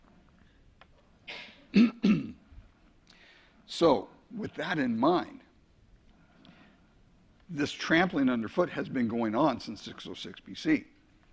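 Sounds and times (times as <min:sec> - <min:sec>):
harsh dry coughs: 0:01.3 - 0:02.4
throat clearing: 0:01.3 - 0:02.4
speech: 0:01.7 - 0:02.4, 0:03.7 - 0:05.4, 0:07.5 - 0:10.9.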